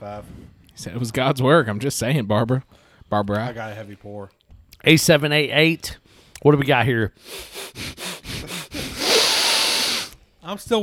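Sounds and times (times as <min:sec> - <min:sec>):
speech: 0:00.0 - 0:08.0, 0:10.5 - 0:10.8
person sniffing while tasting drinks: 0:07.2 - 0:10.2.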